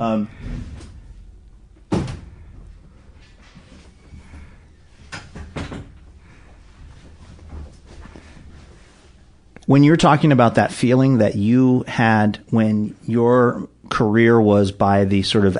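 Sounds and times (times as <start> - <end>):
speech: 0.0 - 0.4, 9.7 - 15.5
door swinging shut with a solid thud: 1.9 - 2.4.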